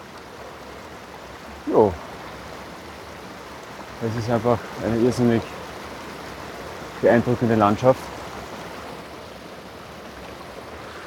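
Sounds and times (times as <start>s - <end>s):
mountain stream swollen with snowmelt rushing at gorge entrance: 0.0s - 11.0s
speech: 1.6s - 2.0s, 4.0s - 5.6s, 7.0s - 8.1s.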